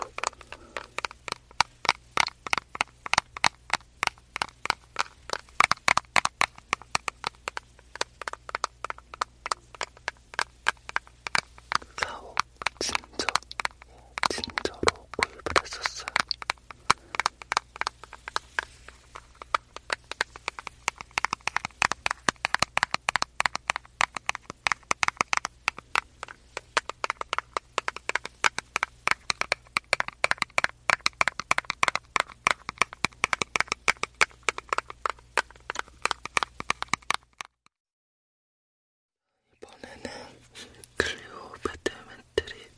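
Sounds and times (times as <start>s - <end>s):
faint low hum: 0.0s - 36.8s, 39.3s - 42.7s
fingers tapping a cosmetics box: 0.0s - 37.6s, 41.0s - 42.7s.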